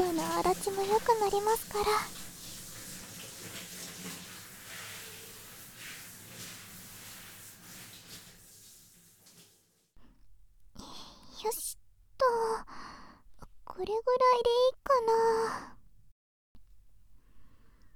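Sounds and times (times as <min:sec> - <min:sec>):
hot water running to rinse dirt from hair before shampooing: 0:00.0 - 0:09.9
speech: 0:00.2 - 0:02.2, 0:13.8 - 0:15.7.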